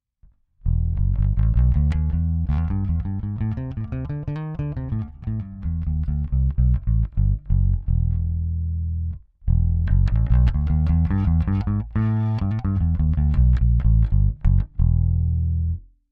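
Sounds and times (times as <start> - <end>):
bass through BBE bmax preamp with active gain compensation: 0.6 - 15.9.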